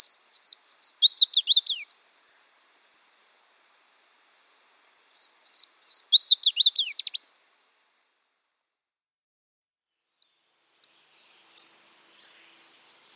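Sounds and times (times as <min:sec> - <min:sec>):
Louisiana waterthrush singing slurred whistles and descending chippering: 0:00.0 - 0:02.0, 0:05.1 - 0:07.2.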